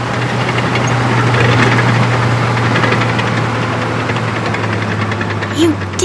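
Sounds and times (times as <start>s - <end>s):
heavy bulldozer engine idling at a construction site: 0.0s - 6.0s.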